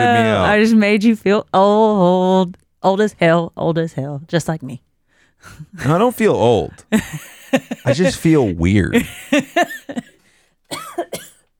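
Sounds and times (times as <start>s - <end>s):
speech: 0.0s - 10.0s
laughter: 6.9s - 10.2s
person coughing harshly: 7.8s - 11.5s.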